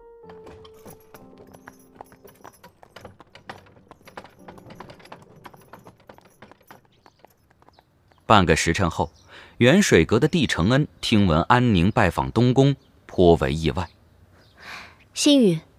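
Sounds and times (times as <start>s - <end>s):
horse-drawn carriage hooves clip-clopping: 0.2s - 8.4s
speech: 8.3s - 14.0s, 14.6s - 15.7s.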